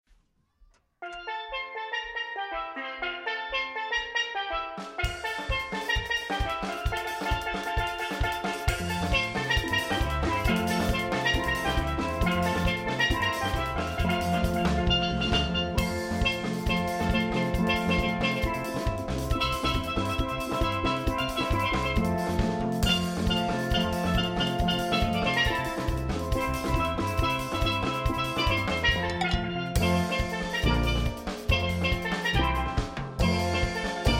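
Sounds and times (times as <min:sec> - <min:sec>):
calypso music: 0:01.0 - 0:34.1.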